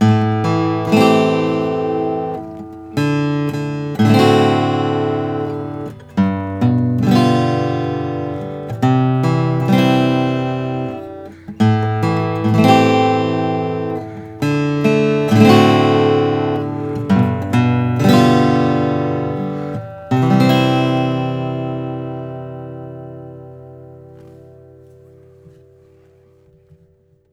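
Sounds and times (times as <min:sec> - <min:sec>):
Bourgeois 0 classic acoustic guitar with German spruce top: 0:00.0 - 0:27.3.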